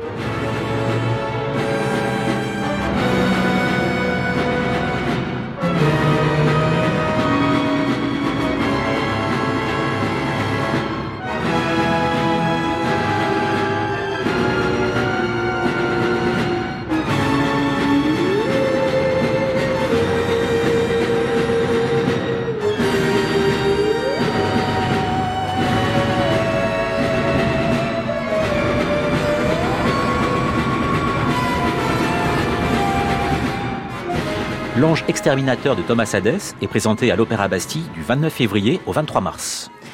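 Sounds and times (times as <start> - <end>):
full orchestra playing dense modern music from a contemporary opera: 0.0 - 39.9
speech: 34.9 - 39.8.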